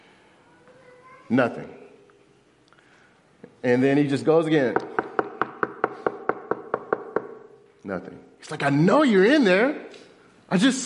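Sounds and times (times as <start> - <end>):
speech: 1.3 - 1.8, 3.6 - 4.9, 7.9 - 10.8
knocking on a door: 4.8 - 7.5.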